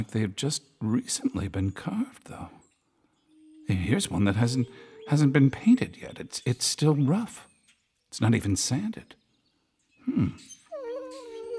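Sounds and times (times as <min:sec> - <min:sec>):
speech: 0:00.0 - 0:02.6, 0:03.7 - 0:07.5, 0:08.1 - 0:09.2, 0:10.0 - 0:10.6
golden Labrador dog whimpering: 0:10.1 - 0:11.5.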